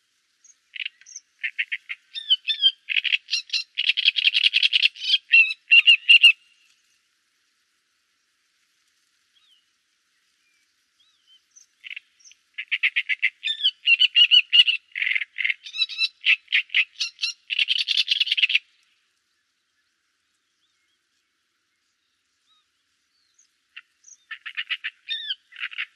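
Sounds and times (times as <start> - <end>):
great reed warbler singing: 0.4 - 6.4, 11.0 - 18.6, 19.8 - 25.9.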